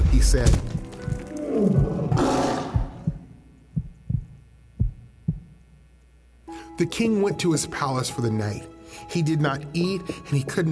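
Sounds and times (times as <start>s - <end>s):
deep grunting thumps: 0.0s - 5.6s
speech: 0.2s - 0.8s, 1.5s - 2.4s, 6.8s - 10.7s
lion roaring in a den: 1.0s - 3.1s.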